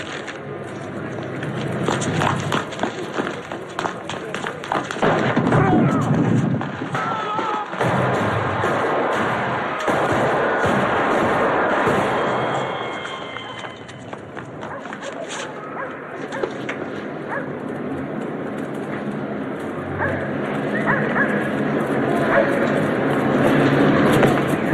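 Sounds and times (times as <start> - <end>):
voices: 0.0 - 7.8, 12.5 - 17.9, 18.8 - 24.7
hurried running footsteps: 0.0 - 10.0, 11.8 - 24.7
sharp gunshot cracks: 1.8 - 13.8.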